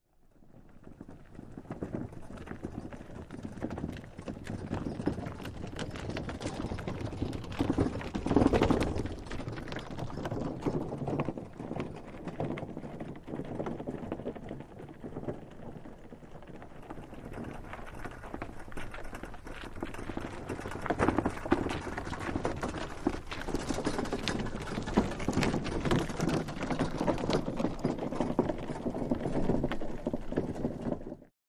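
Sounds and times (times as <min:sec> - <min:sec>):
mule cart walking: 0:00.2 - 0:31.3.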